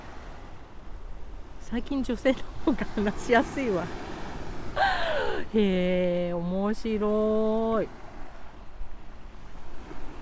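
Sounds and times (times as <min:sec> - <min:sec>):
ocean waves washing against the shore: 0:00.0 - 0:10.2
speech: 0:01.7 - 0:04.1, 0:04.8 - 0:08.0.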